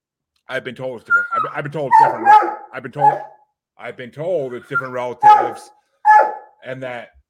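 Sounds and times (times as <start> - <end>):
speech: 0.5 - 5.8, 6.6 - 7.2
dogs whining and whimpering: 1.1 - 3.3, 4.6 - 6.4.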